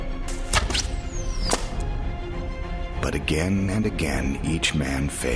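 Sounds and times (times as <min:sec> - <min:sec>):
bowstring snaps of arrows being loosed: 0:00.2 - 0:02.0
speech: 0:03.1 - 0:05.3.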